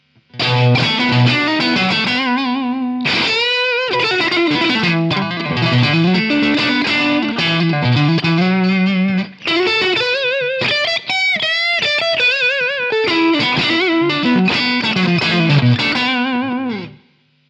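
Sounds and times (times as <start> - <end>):
guitar amplifier with reverb on: 0.0 - 17.4.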